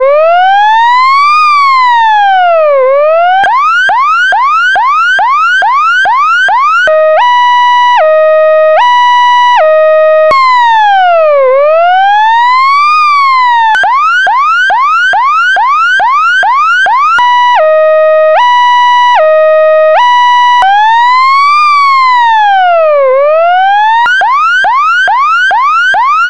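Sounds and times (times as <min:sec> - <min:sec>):
emergency electronic siren: 0:00.0 - 0:26.2.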